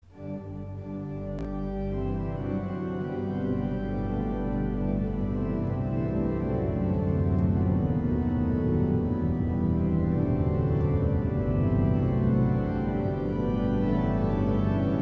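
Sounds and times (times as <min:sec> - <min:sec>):
organ: 0:00.2 - 0:15.0.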